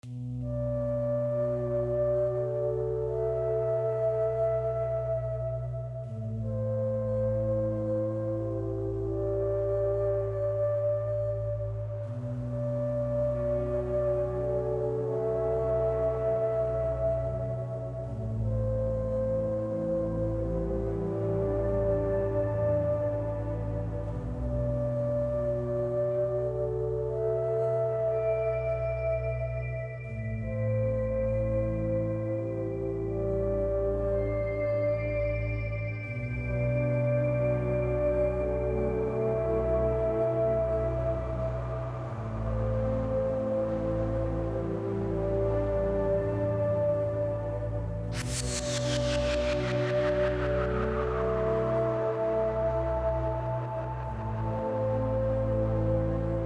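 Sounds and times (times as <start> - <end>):
low morning noise: 0.0 - 56.4.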